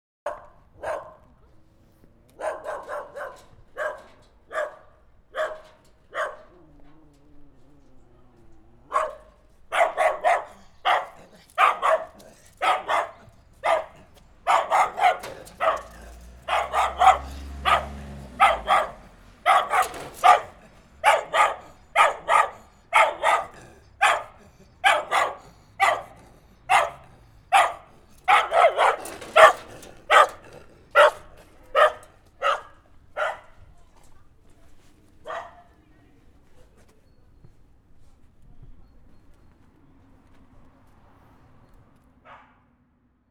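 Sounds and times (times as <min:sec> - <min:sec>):
dog barking: 0:00.2 - 0:01.3, 0:02.4 - 0:06.7, 0:08.9 - 0:33.7, 0:35.2 - 0:35.8, 0:42.2 - 0:42.7.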